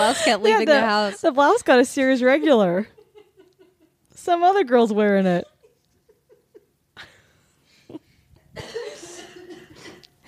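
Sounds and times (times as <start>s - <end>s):
speech: 0.0s - 3.0s, 4.2s - 5.5s
person coughing: 8.6s - 10.1s.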